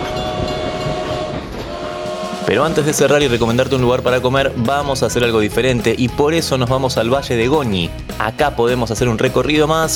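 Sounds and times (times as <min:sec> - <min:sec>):
rail rumble of a train arriving at a working historic station: 0:00.0 - 0:06.1
speech: 0:02.5 - 0:09.9.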